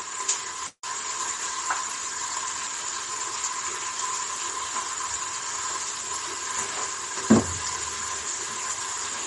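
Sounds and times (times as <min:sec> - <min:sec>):
food frying in hot oil in a pasta pot: 0:00.0 - 0:09.2
clunk of utensil or pot: 0:07.2 - 0:07.9.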